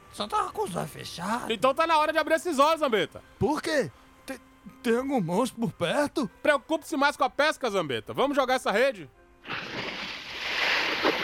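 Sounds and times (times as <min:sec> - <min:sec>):
speech: 0:00.2 - 0:09.6
water sloshing and splashing against a small rocking fishing boat: 0:09.5 - 0:11.2.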